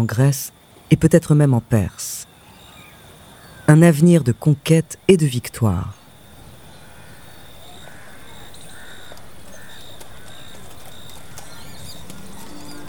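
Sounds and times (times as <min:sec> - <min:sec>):
speech: 0:00.0 - 0:02.3, 0:03.7 - 0:06.0
birds calling faintly: 0:00.0 - 0:12.8
horse hooves trotting outdoors: 0:06.4 - 0:12.8.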